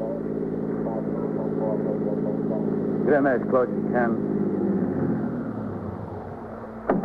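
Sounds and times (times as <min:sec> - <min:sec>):
voices: 0:00.0 - 0:04.3
car engine droning: 0:00.0 - 0:07.0
speech: 0:03.1 - 0:04.4.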